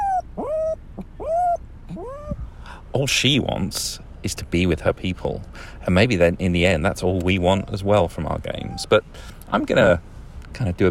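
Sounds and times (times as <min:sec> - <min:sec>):
little white female dog whimpering: 0:00.0 - 0:02.4, 0:08.5 - 0:09.0
speech: 0:02.9 - 0:10.9.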